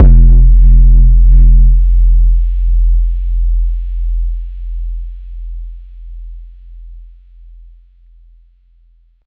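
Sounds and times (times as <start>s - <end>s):
big 808 bass drum: 0.0s - 6.9s.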